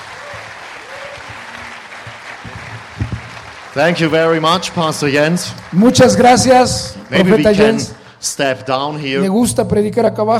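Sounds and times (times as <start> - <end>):
audience applauding a pastor in a church: 0.0 - 8.1
speech: 3.8 - 10.3.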